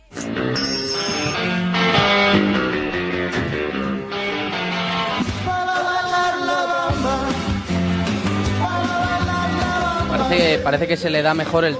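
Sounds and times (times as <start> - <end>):
full steady karaoke backing track: 0.0 - 11.6
man singing karaoke: 5.4 - 7.5, 8.6 - 11.7
speech: 10.4 - 11.7.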